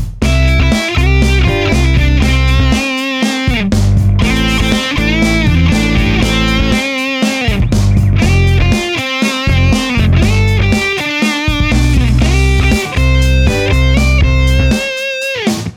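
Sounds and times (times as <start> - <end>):
guitar song: 0.2 - 15.7.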